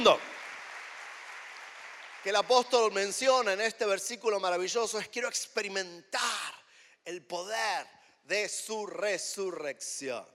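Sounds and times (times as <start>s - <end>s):
speech: 0.0s - 0.3s, 2.2s - 6.4s, 7.0s - 10.3s
audience clapping: 0.0s - 3.2s.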